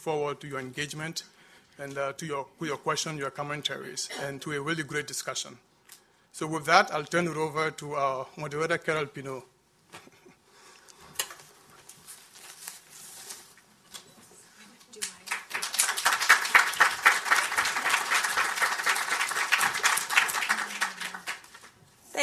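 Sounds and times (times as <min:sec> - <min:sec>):
speech: 0:00.0 - 0:05.7, 0:06.3 - 0:10.1
audience applause: 0:15.1 - 0:21.8.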